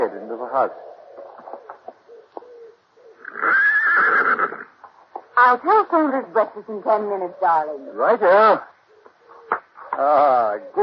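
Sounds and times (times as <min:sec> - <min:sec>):
speech: 0:00.0 - 0:00.9, 0:05.4 - 0:08.7, 0:10.0 - 0:10.8
horse whinnying: 0:03.2 - 0:04.8.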